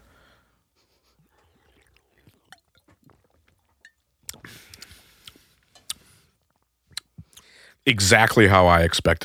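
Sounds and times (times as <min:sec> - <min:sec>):
swallowing and mouth noises: 0:01.0 - 0:07.5
slurping sips of non-carbonated iced tea from a can: 0:01.2 - 0:06.1
speech: 0:07.9 - 0:09.2.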